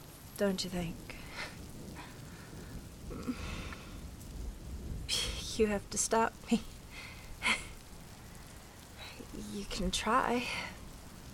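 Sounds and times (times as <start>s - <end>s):
rain falling on a rooftop: 0.0s - 11.3s
speech: 0.4s - 1.5s, 5.6s - 6.7s, 9.5s - 10.8s.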